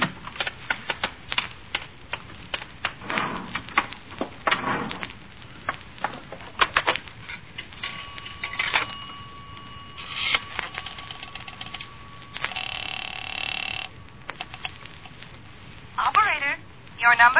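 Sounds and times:
faint hiss: 0.0s - 17.3s
steady telephone tone: 7.8s - 16.1s
telephone in a filling station phone booth being handled and dialed: 7.9s - 14.8s.

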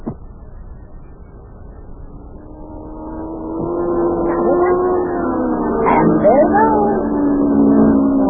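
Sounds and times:
race car engine on a track roaring past: 2.1s - 8.2s.

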